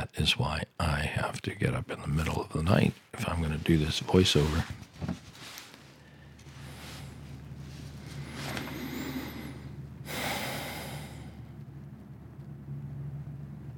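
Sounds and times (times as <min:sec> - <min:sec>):
speech: 0:00.1 - 0:05.1
logging truck rumbling along a road: 0:06.0 - 0:13.7.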